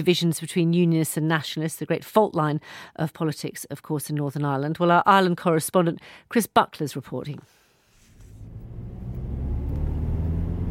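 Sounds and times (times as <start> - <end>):
speech: 0.0 - 7.6
car driving on the main Belfast to Dublin road: 8.0 - 10.6.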